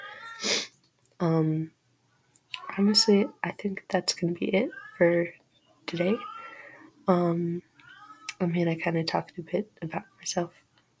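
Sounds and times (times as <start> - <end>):
female cat in heat hissing: 0.2 - 0.7
speech: 1.2 - 1.8, 2.8 - 6.3, 7.1 - 7.7, 8.4 - 10.6.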